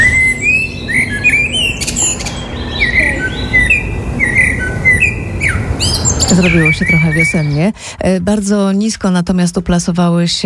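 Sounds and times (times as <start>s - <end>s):
common blackbird singing: 0.0s - 7.7s
low outdoor hum: 0.0s - 10.4s
speech: 6.4s - 10.4s.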